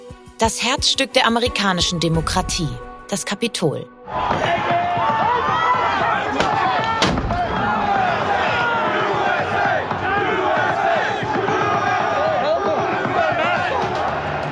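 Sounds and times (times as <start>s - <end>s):
speech: 0.4s - 4.7s
rioting mob shouting and yelling: 4.1s - 14.4s
sharp bangs and thuds: 6.4s - 8.1s.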